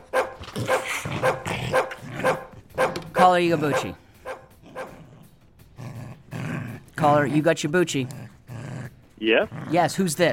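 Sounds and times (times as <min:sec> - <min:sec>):
slobbery dog barking: 0:00.0 - 0:05.0
speech: 0:03.2 - 0:04.0, 0:07.0 - 0:08.2, 0:09.2 - 0:10.3.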